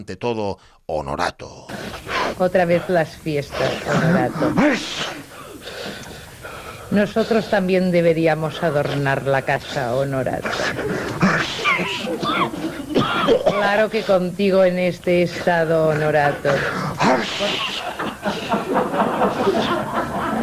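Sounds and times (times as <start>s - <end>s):
speech: 0.0s - 5.1s, 6.9s - 11.6s, 13.3s - 17.8s
strained drawn-out vocal sounds: 0.0s - 20.4s
laughter: 2.4s - 5.0s, 9.8s - 14.2s, 15.1s - 20.4s
sneezes: 3.5s - 6.0s, 10.4s - 14.2s, 16.4s - 18.0s.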